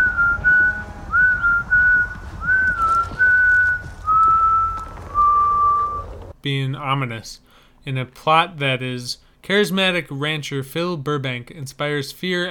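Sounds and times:
man whistling a slow wavering tune while walking: 0.0s - 6.2s
low rumble: 0.0s - 6.4s
speech: 6.4s - 12.4s.

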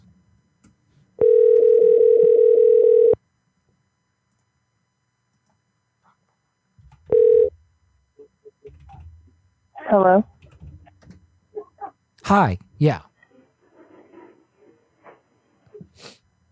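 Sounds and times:
telephone dial tone: 1.2s - 3.2s, 7.1s - 7.5s
speech: 10.0s - 10.3s, 12.3s - 13.1s.

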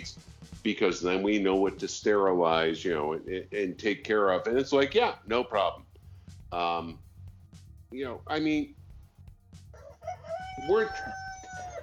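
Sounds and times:
speech: 0.0s - 5.9s, 6.5s - 7.0s, 7.9s - 8.8s, 10.6s - 11.2s
rooster crowing on a working farm: 9.7s - 11.8s.

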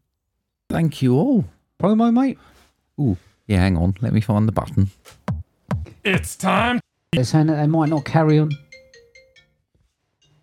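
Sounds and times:
speech: 0.7s - 5.2s, 6.0s - 8.6s
work phone ringtone of bright electronic tones: 7.8s - 9.6s.

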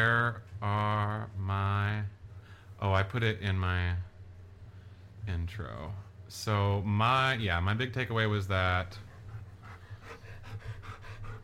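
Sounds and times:
low hum: 0.0s - 11.4s
speech: 2.8s - 4.1s, 5.2s - 9.0s
old dog panting: 8.8s - 11.4s.

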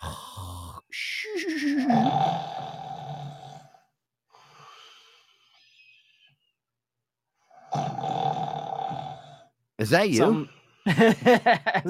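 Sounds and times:
loud rumbling snoring: 1.9s - 3.8s, 7.6s - 9.5s
wheezy breath: 3.6s - 6.5s
speech: 9.8s - 11.8s
laughter: 10.9s - 11.8s.

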